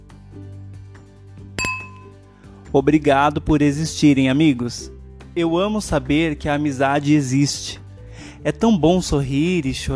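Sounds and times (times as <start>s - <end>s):
glasses clinking in a toast: 1.6s - 2.2s
speech: 2.7s - 7.8s, 8.4s - 9.9s.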